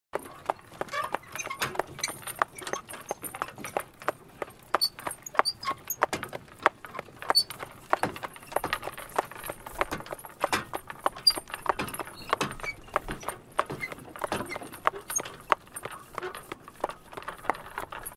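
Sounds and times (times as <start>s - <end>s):
horse carriage: 0.2s - 18.1s.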